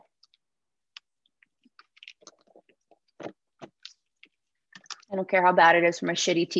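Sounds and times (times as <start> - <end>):
crunchy chewing of ice: 1.0 - 5.1
speech: 5.1 - 6.5.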